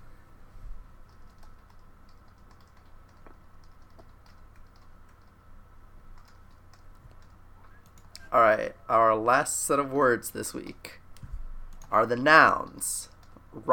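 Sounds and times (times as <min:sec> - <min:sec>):
low steady hum: 0:00.0 - 0:13.7
soft typing on a non-mechanical computer keyboard: 0:01.0 - 0:05.4, 0:06.1 - 0:08.3, 0:11.7 - 0:13.4
speech: 0:08.4 - 0:11.0, 0:11.9 - 0:13.7.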